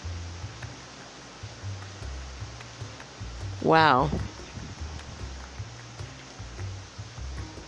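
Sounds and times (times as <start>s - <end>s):
heavy rain pouring on a roof and foliage: 0.0s - 7.6s
speech: 3.6s - 4.3s.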